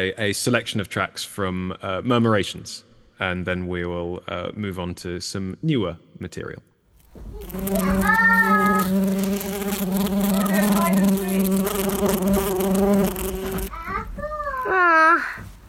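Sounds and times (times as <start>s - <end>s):
speech: 0.0s - 8.2s
bee buzzing: 7.1s - 15.6s
child's voice: 7.2s - 9.3s, 10.2s - 11.9s, 13.4s - 15.6s.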